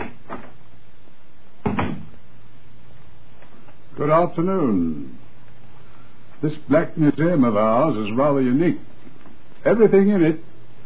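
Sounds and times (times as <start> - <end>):
door opening with a creaking thud: 1.6 - 2.1
speech: 4.0 - 5.2, 6.4 - 8.9, 9.6 - 10.5.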